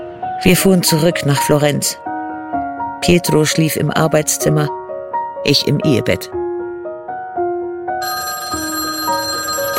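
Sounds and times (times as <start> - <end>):
speech: 0.4 - 2.1, 3.0 - 4.8, 5.4 - 6.4
telephone ringing with a melodic electronic ringtone: 8.0 - 9.7.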